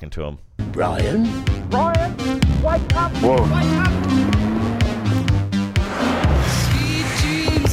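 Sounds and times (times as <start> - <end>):
speech: 0.0 - 4.3
Honda car engine revving loudly in a chase: 1.2 - 7.7
car tires squealing in a chase: 2.6 - 7.7.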